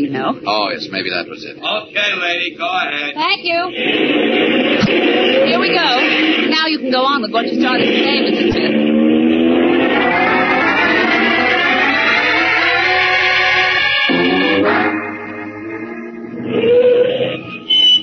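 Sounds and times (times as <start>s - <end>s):
speech: 0.0s - 8.8s
car engine accelerating through a roadblock: 3.7s - 16.8s.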